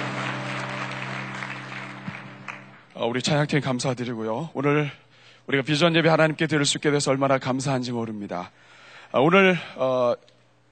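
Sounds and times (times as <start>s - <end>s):
audience at a church worship service applauding: 0.0s - 3.0s
low sustained musical hum: 0.0s - 4.6s
speech: 3.0s - 10.3s.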